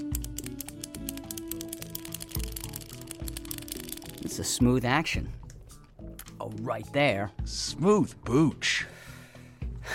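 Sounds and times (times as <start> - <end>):
retractable pen clicking: 0.0 - 4.4
speech: 4.2 - 5.4, 6.5 - 8.9.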